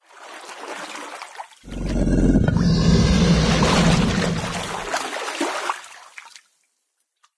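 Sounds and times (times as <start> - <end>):
alligator: 1.6 - 5.0
random animal sounds: 1.7 - 4.9.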